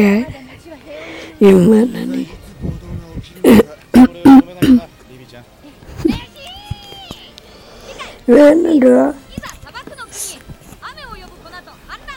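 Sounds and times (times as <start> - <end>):
speech: 0.0 - 0.4, 1.4 - 2.1, 8.3 - 9.2
harsh coughs and throat-clearing bursts: 3.4 - 4.9.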